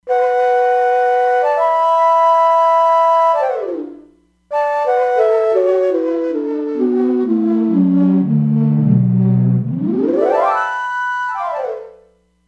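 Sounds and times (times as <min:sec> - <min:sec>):
E-mu Proteus-3 factory ney patch in fifths: 0:00.1 - 0:12.0.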